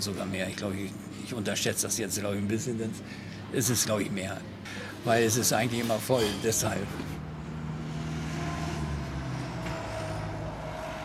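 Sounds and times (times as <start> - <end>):
speech: 0.0 - 7.2
lorries driving in and out of an industrial estate: 6.3 - 11.0.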